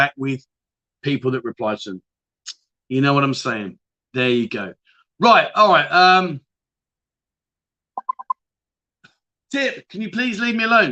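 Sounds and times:
speech: 0:00.0 - 0:02.1, 0:02.9 - 0:06.4, 0:09.5 - 0:10.9
phone message notification electronic pings: 0:08.0 - 0:08.4.

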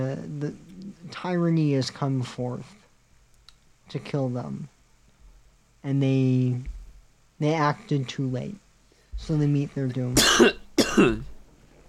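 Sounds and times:
speech: 0:00.0 - 0:02.8, 0:03.9 - 0:04.8, 0:05.8 - 0:06.8, 0:07.4 - 0:08.6, 0:09.2 - 0:11.3
cough: 0:10.2 - 0:11.3.

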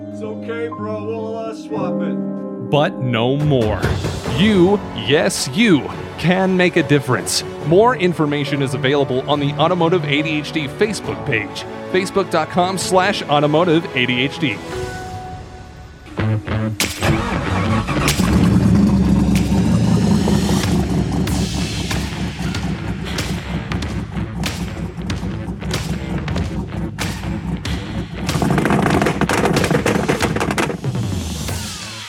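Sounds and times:
speech: 0:00.2 - 0:14.9
Volvo 164 engine revving with lumpy choppy idle: 0:16.9 - 0:31.1.

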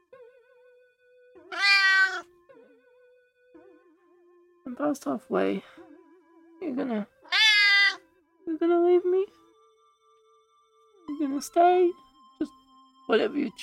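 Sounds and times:
cat meowing: 0:01.5 - 0:02.2, 0:07.3 - 0:08.0
speech: 0:04.8 - 0:05.8, 0:06.7 - 0:07.1, 0:08.6 - 0:09.4, 0:11.3 - 0:13.6.

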